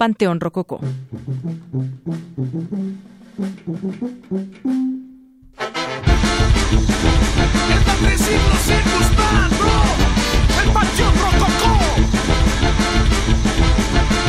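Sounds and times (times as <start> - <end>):
speech: 0.0 - 5.0, 6.7 - 13.4
band song with driving drums: 6.1 - 14.2.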